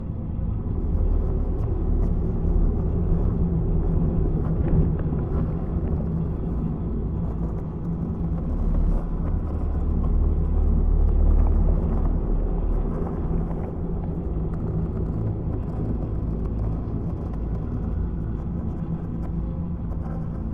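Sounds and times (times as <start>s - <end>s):
ambient psi storm: 0.0s - 20.5s.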